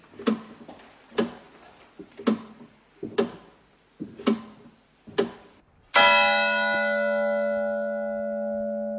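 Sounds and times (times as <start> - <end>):
heavy mechanical clock ticking: 0.0 - 5.6
cathedral bell striking the quarter hour: 5.9 - 8.9.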